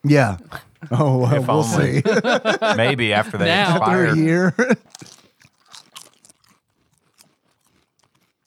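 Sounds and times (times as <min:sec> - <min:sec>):
speech: 0:00.0 - 0:05.1
laughter: 0:00.8 - 0:04.8
crunching cheddar barbecue snack chips: 0:04.8 - 0:08.4.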